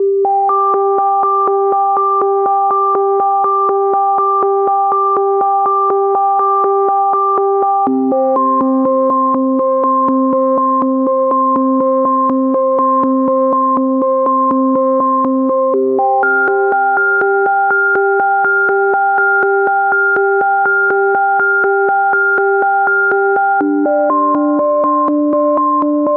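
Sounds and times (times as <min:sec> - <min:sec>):
melodic arpeggios in A major and G minor: 0:00.0 - 0:26.1.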